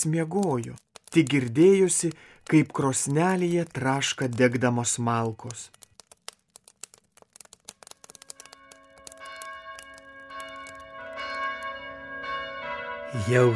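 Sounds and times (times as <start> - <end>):
speech: 0.0 - 5.8, 13.1 - 13.5
church bells ringing on Christmas morning: 10.2 - 13.5.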